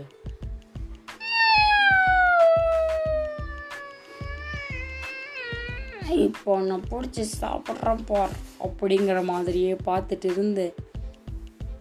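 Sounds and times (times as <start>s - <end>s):
cat meowing: 1.2s - 6.3s
steady rhythmic tapping beat: 2.1s - 11.8s
speech: 6.1s - 10.8s.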